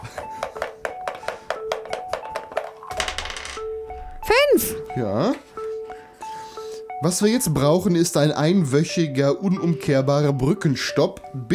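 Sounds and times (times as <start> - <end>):
die rolling across a hard tabletop: 2.2 - 3.7
speech: 4.3 - 5.5, 7.0 - 11.5.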